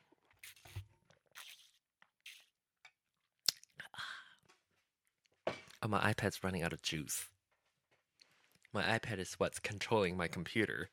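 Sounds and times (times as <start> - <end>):
quiet slurping sips of water: 0.3 - 2.6
mouth clicks: 3.4 - 3.8
speech: 5.8 - 7.3, 8.7 - 10.9.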